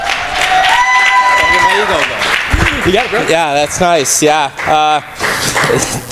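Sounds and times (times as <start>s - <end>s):
scattered voices whooping and cheering: 0.0s - 2.4s
church audience applause: 0.0s - 3.8s, 4.4s - 6.0s
speech: 1.8s - 2.2s, 2.9s - 6.1s.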